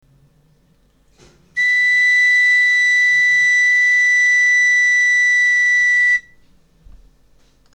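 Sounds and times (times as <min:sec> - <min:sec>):
galoubet pipe playing the note C: 0:01.6 - 0:06.3.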